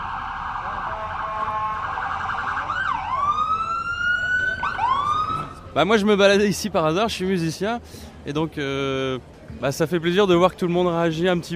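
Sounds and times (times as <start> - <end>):
ambulance siren wailing: 0.0 - 5.7
traffic rumble: 0.0 - 11.5
speech: 5.8 - 11.5.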